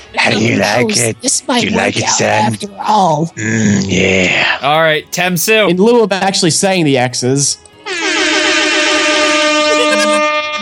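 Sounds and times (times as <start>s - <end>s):
speech: 0.1s - 8.0s
air horn blaring: 7.8s - 10.6s.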